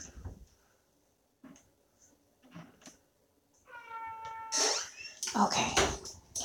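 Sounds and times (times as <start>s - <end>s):
cat yowling: 3.7s - 5.0s
speech: 5.4s - 6.0s.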